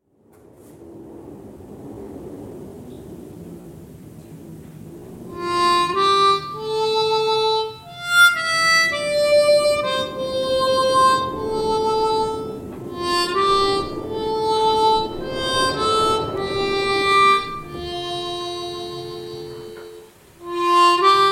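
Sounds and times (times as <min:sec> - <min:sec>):
harmonica solo in F: 0:05.4 - 0:21.3.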